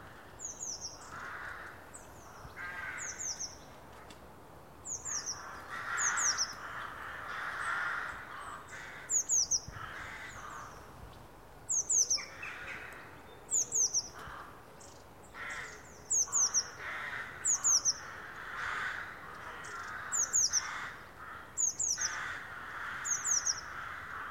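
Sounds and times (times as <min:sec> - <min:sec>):
faint broad background hiss: 0:00.0 - 0:24.2
Eurasian blue tit Cyanistes caeruleus giving high thin calls: 0:04.9 - 0:10.8, 0:11.7 - 0:14.4, 0:15.4 - 0:21.0, 0:21.6 - 0:23.9.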